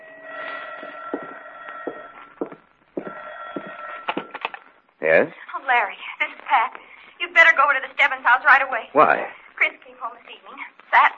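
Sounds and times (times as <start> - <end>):
telephone bell ringing in an apartment: 0.0 - 4.5
speech: 5.0 - 11.1.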